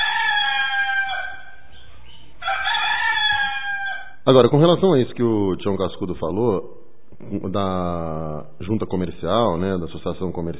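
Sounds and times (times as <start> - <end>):
rooster crowing: 0.0 - 4.2
speech: 4.2 - 10.5.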